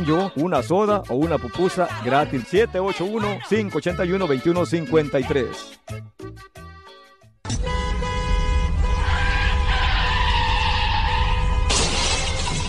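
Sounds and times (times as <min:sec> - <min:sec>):
speech: 0:00.0 - 0:06.6
car horn blaring: 0:07.4 - 0:12.1
car tire screech: 0:08.8 - 0:12.6
car crash: 0:09.3 - 0:12.6
glass shattering in a car crash: 0:11.7 - 0:12.6.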